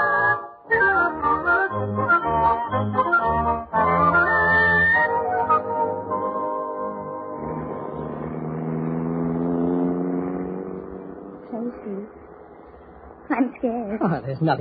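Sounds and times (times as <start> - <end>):
car engine pulling away: 0.0 - 14.5
speech: 14.4 - 14.5.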